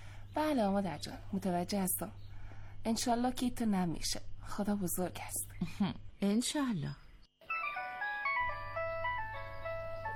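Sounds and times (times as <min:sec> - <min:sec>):
speech: 0:00.4 - 0:02.2, 0:02.8 - 0:07.0
phone ringing with melodic electronic ringtone: 0:07.5 - 0:10.1.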